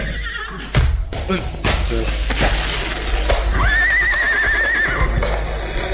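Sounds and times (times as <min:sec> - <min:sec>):
horse whinnying: 0:00.0 - 0:00.7, 0:03.5 - 0:05.2
hooves clopping on hard ground: 0:00.0 - 0:05.9
speech: 0:01.3 - 0:02.6.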